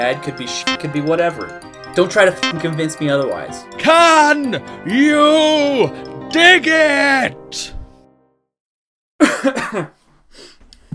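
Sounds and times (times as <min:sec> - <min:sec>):
speech: 0:00.0 - 0:07.8, 0:09.4 - 0:10.5
person coughing: 0:09.2 - 0:10.0
breath: 0:10.2 - 0:10.9.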